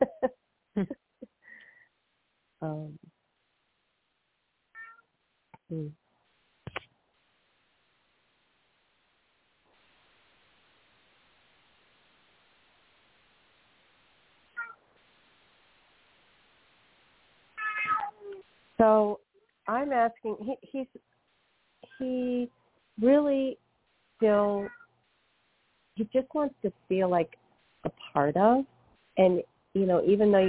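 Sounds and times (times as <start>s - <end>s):
speech: 0.8s - 1.0s, 5.8s - 6.0s, 18.8s - 21.1s, 22.0s - 23.6s, 24.2s - 24.8s, 26.0s - 30.4s
cat meowing to be let out: 4.8s - 5.0s, 17.6s - 18.4s.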